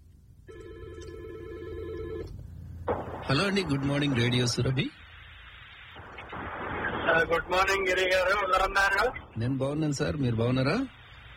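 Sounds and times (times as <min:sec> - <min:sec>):
low rumble: 0:00.0 - 0:11.3
telephone ringing for an incoming caller: 0:00.5 - 0:02.4
speech: 0:03.3 - 0:05.0, 0:07.3 - 0:11.0.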